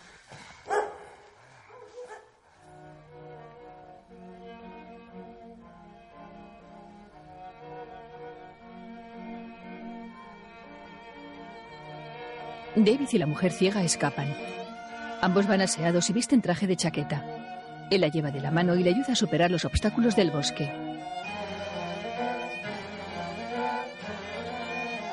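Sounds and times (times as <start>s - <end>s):
dogs barking around a grave: 0.7s - 2.4s
steady film music: 2.8s - 25.1s
speech: 12.8s - 14.6s, 15.2s - 20.8s.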